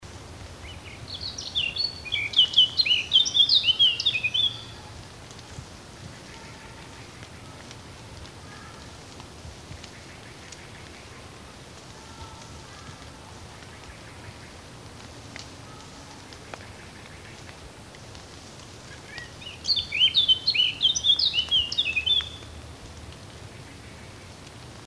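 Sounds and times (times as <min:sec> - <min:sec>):
blackcap singing: 0:01.1 - 0:04.7, 0:19.1 - 0:22.4.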